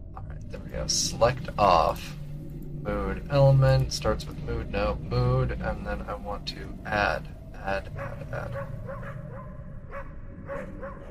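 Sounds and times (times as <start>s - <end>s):
steady low rumbling background: 0.0s - 11.0s
speech: 0.9s - 2.2s, 2.8s - 9.2s
dog barking: 8.0s - 11.0s.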